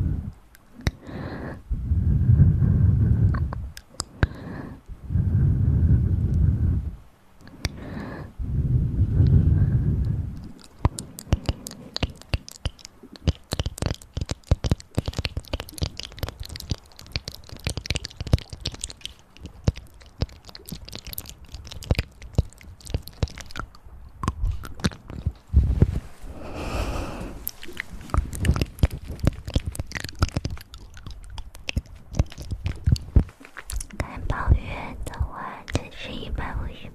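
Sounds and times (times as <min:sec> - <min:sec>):
rapid crackly clicks and wet mouth noises: 0:00.0 - 0:36.9
low ear massage rubbing: 0:08.8 - 0:23.6, 0:24.4 - 0:34.9.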